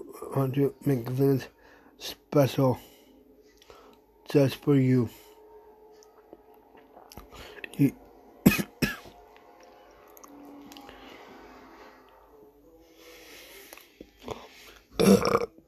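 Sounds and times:
speech: 0.3 - 3.0, 4.3 - 5.2, 7.8 - 8.0
loud burp: 14.9 - 15.6
short throaty bursts: 14.9 - 15.6.

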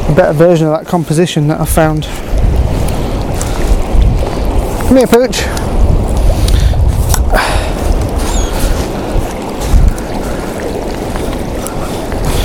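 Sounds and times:
low wind rumble against the microphone: 0.0 - 12.4
water lapping at the shoreline of a public beach: 0.0 - 12.4
speech: 0.2 - 2.4, 4.9 - 5.7.

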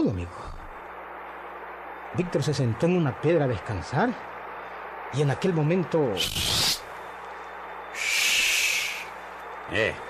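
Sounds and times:
speech: 0.0 - 0.6, 2.1 - 4.3, 5.1 - 6.6, 9.7 - 10.0
barn owl screeching: 6.2 - 6.9, 7.9 - 9.2.

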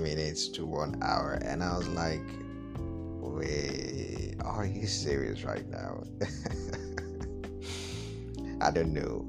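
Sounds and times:
speech: 0.0 - 6.8, 8.6 - 9.2
laughter: 6.2 - 7.3
wet nasal sniffs from a person with a runny nose: 7.6 - 8.2.

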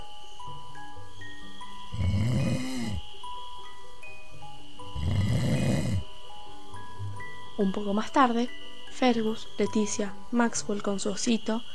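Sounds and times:
soft steady musical tones: 0.0 - 11.7
snoring: 1.7 - 3.2, 4.8 - 6.2
speech: 7.6 - 11.7.

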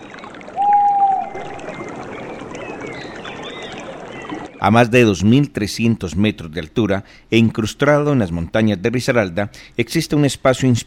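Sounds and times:
water flowing in a forest: 0.0 - 5.0
brief high whistle: 0.6 - 1.5
faint bird chirps: 0.6 - 1.9
speech: 4.6 - 10.8.

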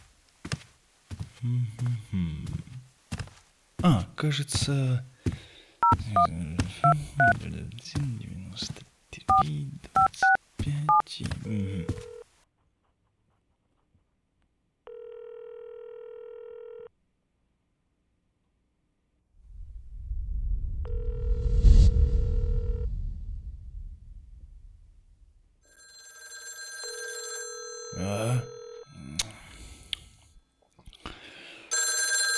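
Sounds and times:
speech: 1.4 - 2.7, 3.8 - 12.0
telephone dial tone: 14.9 - 16.9, 25.8 - 28.9, 31.7 - 32.3
low rumble: 19.4 - 25.6.

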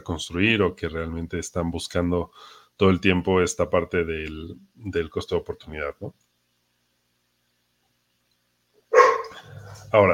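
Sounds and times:
speech: 0.0 - 6.2, 9.9 - 10.1
pet dog barking at home: 8.9 - 9.7
pet dog growling at home: 9.0 - 10.0.

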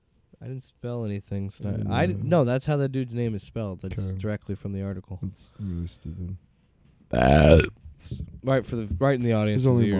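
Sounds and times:
speech: 0.5 - 6.5, 7.1 - 9.9
loud burp with low buzzy rumble: 7.1 - 7.8.

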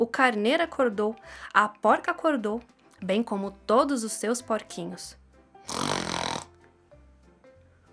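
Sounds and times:
speech: 0.1 - 5.9
loud rasping snore: 5.6 - 6.6.

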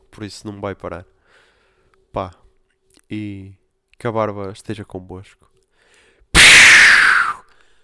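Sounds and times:
speech: 0.2 - 1.1, 2.1 - 2.4, 3.1 - 5.5
smoke bomb puff sound effect: 6.4 - 7.3.

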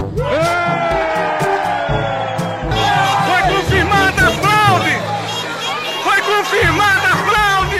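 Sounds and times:
large crowd shouting and cheering: 0.0 - 7.7
rhythmic thumps: 2.4 - 7.7.

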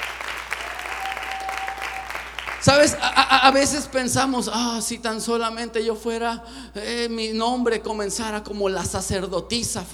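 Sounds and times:
crowd applauding: 0.0 - 3.4
speech: 2.6 - 9.9.

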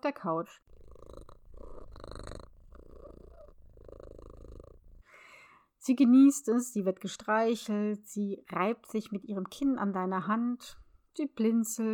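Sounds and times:
speech: 0.0 - 0.7, 5.8 - 11.9
cat purring: 0.6 - 5.1.

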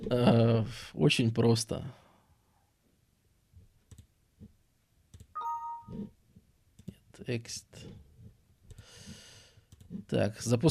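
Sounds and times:
speech: 0.1 - 2.0, 7.2 - 8.0, 9.9 - 10.6
computer mouse clicks: 3.8 - 4.1, 9.7 - 10.0
short bright electronic chime: 5.4 - 6.1.

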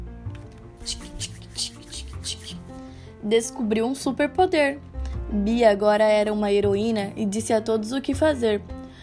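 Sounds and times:
steady musical background: 0.0 - 9.0
speech: 0.8 - 1.7, 3.2 - 8.8
hands rubbing together with soap and water: 0.8 - 2.7.

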